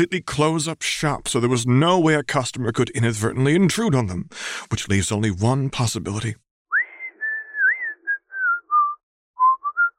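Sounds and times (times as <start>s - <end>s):
speech: 0.0s - 6.4s
man whistling a tune: 6.7s - 9.9s.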